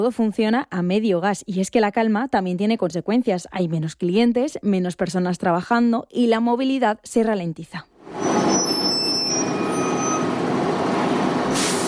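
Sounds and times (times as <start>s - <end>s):
speech: 0.0s - 8.2s
city bus rumbling up to a bus stop: 8.1s - 11.8s
faint high city bus brake squeal: 8.2s - 10.4s
city bus air-brake hiss: 11.5s - 11.8s.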